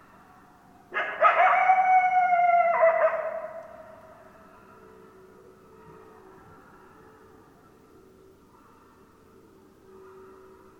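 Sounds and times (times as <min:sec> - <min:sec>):
coyote barking and howling: 0:00.9 - 0:03.8
faint tone: 0:04.4 - 0:10.7.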